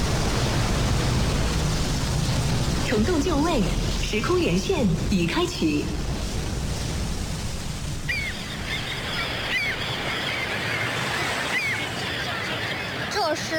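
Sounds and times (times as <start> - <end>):
waves washing at a large naval harbor: 0.0 - 13.5
speech: 2.9 - 6.1
short honking bird calls: 8.0 - 13.2.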